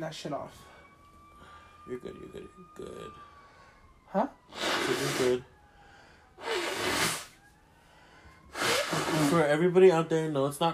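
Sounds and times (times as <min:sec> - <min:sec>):
speech: 0:00.0 - 0:00.7, 0:01.9 - 0:03.3, 0:04.1 - 0:05.5, 0:09.2 - 0:10.7
person with a cold blowing nose: 0:04.5 - 0:05.4, 0:06.4 - 0:07.4, 0:08.5 - 0:09.5.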